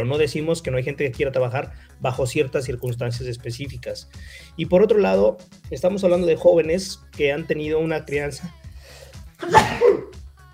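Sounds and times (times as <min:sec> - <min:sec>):
speech: 0:00.0 - 0:08.6
person sneezing: 0:09.4 - 0:10.2.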